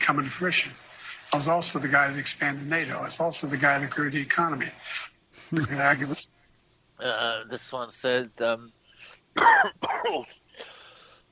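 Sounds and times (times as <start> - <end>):
speech: 0.1 - 6.4, 7.0 - 10.8
person clearing throat and coughing after something went down the wrong way: 9.3 - 10.8.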